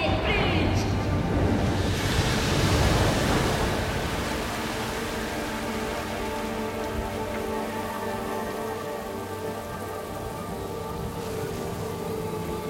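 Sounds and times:
moving water and waves surging: 0:00.1 - 0:12.6.

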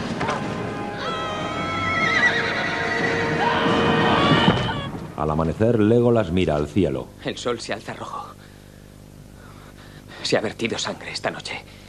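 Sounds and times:
horse rearing and whinnying: 0:01.0 - 0:05.0
speech: 0:05.4 - 0:08.4, 0:10.2 - 0:11.8.

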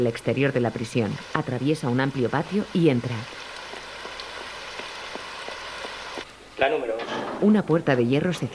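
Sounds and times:
speech: 0:00.0 - 0:03.5, 0:07.4 - 0:08.5
heavy rain: 0:01.2 - 0:06.2.

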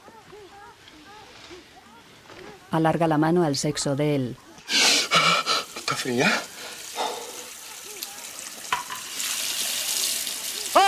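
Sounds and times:
speech: 0:02.7 - 0:04.4, 0:06.0 - 0:06.5
hot water gushing from a faulty tap letting off steam: 0:05.5 - 0:10.8.

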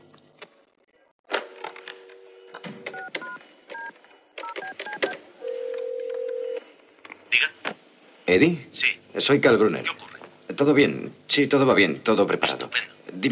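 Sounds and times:
short two-tone telephone keypad beeps: 0:02.9 - 0:05.2
steady continuous telephone line tone: 0:04.5 - 0:06.8
speech: 0:08.3 - 0:13.3.

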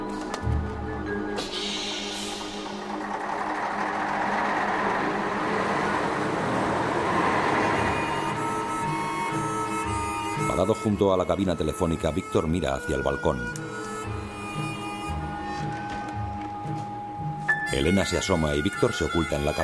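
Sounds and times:
bus idling and rumbling to a halt: 0:00.0 - 0:10.8, 0:13.6 - 0:19.6
steady street traffic roar of engines and road noise: 0:01.4 - 0:10.6
speech: 0:10.7 - 0:13.9, 0:17.8 - 0:19.6.

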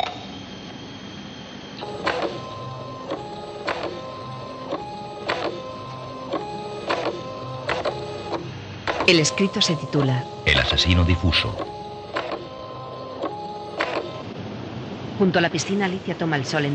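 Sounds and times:
printer whirring while printing a document from a laptop: 0:00.2 - 0:14.4
printer clacking and feeding paper: 0:01.8 - 0:14.2
speech: 0:09.1 - 0:11.7, 0:15.2 - 0:16.7.

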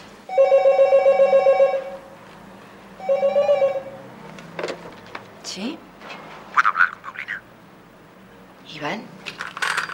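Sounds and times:
telephone ringing: 0:00.3 - 0:02.0, 0:03.0 - 0:04.0.

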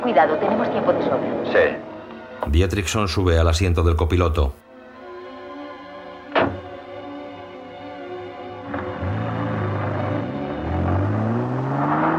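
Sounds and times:
speech: 0:00.0 - 0:04.6
sharp thud: 0:06.3 - 0:06.7
car engine humming as car is driven out of a garage and accelerates: 0:08.5 - 0:12.1.

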